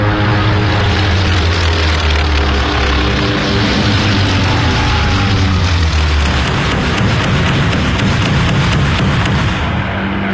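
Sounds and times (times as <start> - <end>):
torpedo bomber propeller engines droning during takeoff and dive: 0.0 - 10.3.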